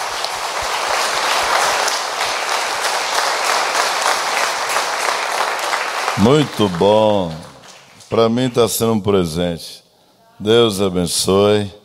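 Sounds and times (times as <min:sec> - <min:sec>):
applause from a sizable audience: 0:00.0 - 0:08.3
speech: 0:06.2 - 0:07.5, 0:08.1 - 0:09.8, 0:10.4 - 0:11.8.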